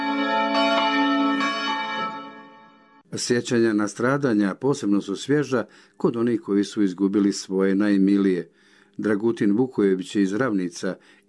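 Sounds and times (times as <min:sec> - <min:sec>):
church bells ringing in Novi Grad after a memorial service: 0:00.0 - 0:03.1
speech: 0:03.2 - 0:11.2.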